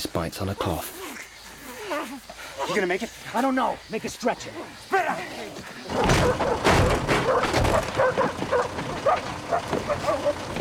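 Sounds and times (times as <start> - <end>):
speech: 0.1 - 1.2, 2.0 - 10.5
tracker dogs barking: 5.7 - 10.5
dull thumps: 5.9 - 10.5.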